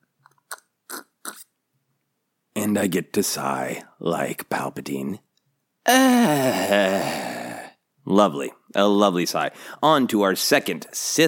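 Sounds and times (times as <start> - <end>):
person sipping whiskey: 0.4 - 1.5
speech: 2.6 - 5.2, 5.8 - 7.3, 8.0 - 11.2.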